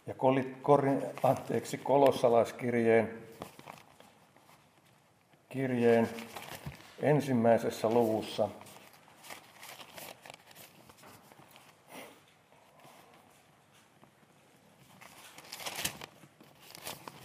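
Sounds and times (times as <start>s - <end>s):
speech: 0.1s - 3.4s, 5.5s - 6.4s, 7.0s - 8.6s
thin Chinese paper pages of a Bible turned and flipped: 0.8s - 2.3s, 3.3s - 5.0s, 5.8s - 7.0s, 7.6s - 11.8s, 14.8s - 17.2s.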